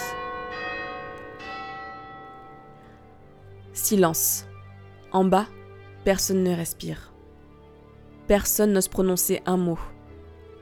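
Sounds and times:
campanile church bells striking noon: 0:00.0 - 0:04.3
speech: 0:03.8 - 0:04.5, 0:05.1 - 0:07.1, 0:08.3 - 0:10.0.

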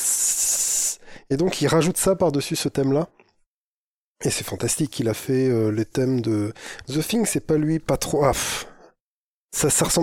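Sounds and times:
voice imitating a gust of wind as a tumbleweed passes: 0:00.0 - 0:01.0
speech: 0:01.3 - 0:03.3, 0:04.2 - 0:08.7, 0:09.5 - 0:10.0.

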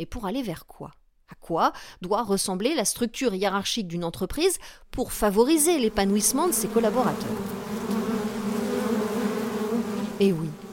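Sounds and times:
speech: 0:00.0 - 0:07.8, 0:10.2 - 0:10.6
swarm of bees buzzing in a hive: 0:05.8 - 0:10.7.

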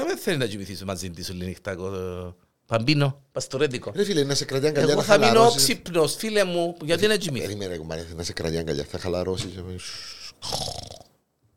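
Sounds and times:
speech: 0:00.1 - 0:10.9
person mimicking snoring with rasping breaths: 0:10.1 - 0:11.2.

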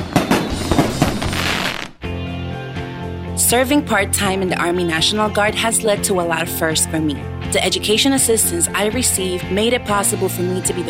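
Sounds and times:
fireworks bursting with sharp pops and dense crackling: 0:00.0 - 0:02.0
speech: 0:03.5 - 0:10.8.

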